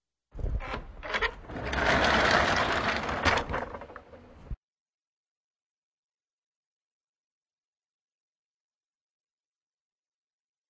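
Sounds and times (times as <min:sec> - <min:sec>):
door moving on rails: 0:00.4 - 0:04.6.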